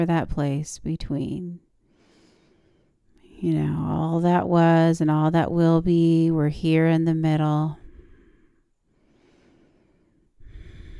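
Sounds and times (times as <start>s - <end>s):
speech: 0.0s - 1.7s, 3.4s - 7.8s
slow deep breathing: 1.8s - 3.1s, 7.8s - 10.9s.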